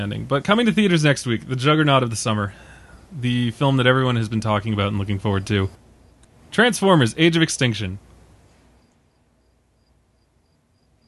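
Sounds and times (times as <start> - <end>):
speech: 0.0 - 5.8, 6.5 - 8.1
low hum: 0.0 - 11.0
lone cricket chirping in thin high-pitched pulses: 5.0 - 6.2, 8.8 - 11.0.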